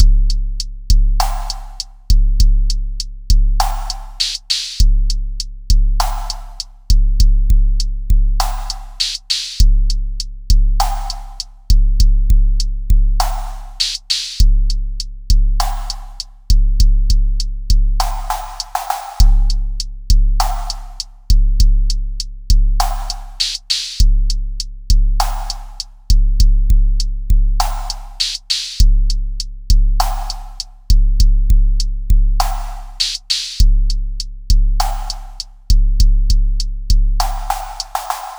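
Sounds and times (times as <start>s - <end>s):
minimal drum loop: 0.0s - 5.2s, 5.8s - 14.8s, 15.4s - 24.4s, 25.0s - 29.2s, 29.8s - 38.3s.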